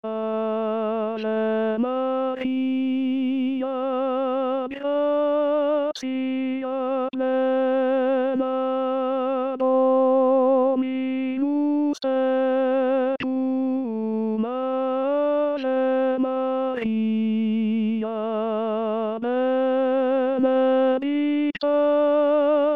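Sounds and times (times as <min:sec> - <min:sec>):
tenor singing a hymn: 0:00.0 - 0:22.7.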